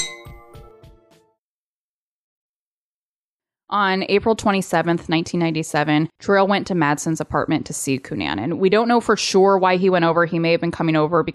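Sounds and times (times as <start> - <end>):
glasses clinking in a toast: 0.0 - 0.4
speech: 3.7 - 11.3.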